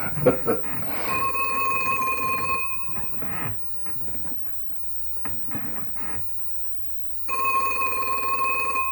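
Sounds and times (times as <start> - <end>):
faint rustling: 0.0 - 7.3
telephone bell ringing: 0.8 - 3.4, 7.3 - 8.9.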